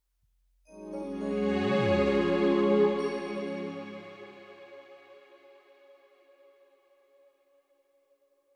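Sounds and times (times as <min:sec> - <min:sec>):
botanical musical swell in D flat at 108 bpm: 0:00.8 - 0:05.6.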